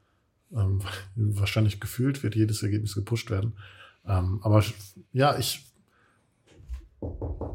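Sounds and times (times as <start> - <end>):
speech: 0.5 - 5.7, 7.0 - 7.4
knocking on wood: 6.6 - 7.5.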